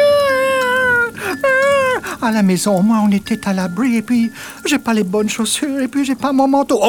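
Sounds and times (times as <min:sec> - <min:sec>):
child wailing in a high sustained cry: 0:00.0 - 0:02.1
speech: 0:02.2 - 0:06.8.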